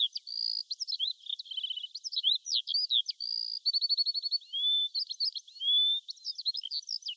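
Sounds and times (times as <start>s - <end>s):
bird singing trills, chirps and whistles: 0.0s - 7.1s.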